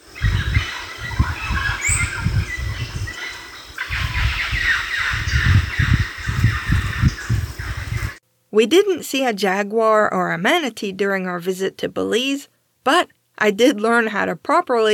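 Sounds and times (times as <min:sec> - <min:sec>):
mealy parrots calling raucously: 0:00.2 - 0:07.9
speech: 0:08.6 - 0:14.9.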